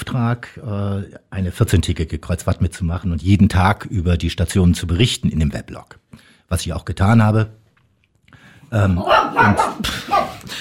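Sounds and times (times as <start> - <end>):
speech: 0.2 - 7.6, 8.7 - 10.5
dog barking at a passing ship: 9.0 - 10.5.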